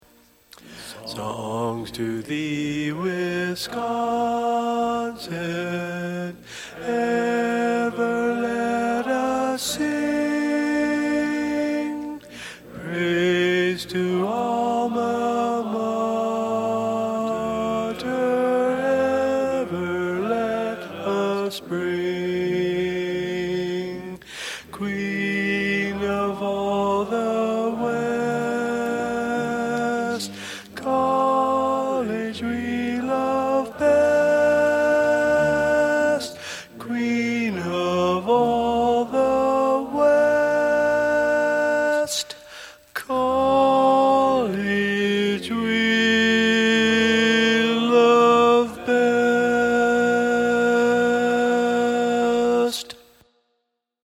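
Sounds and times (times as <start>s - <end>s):
tenor singing learning track: 0.1s - 53.2s.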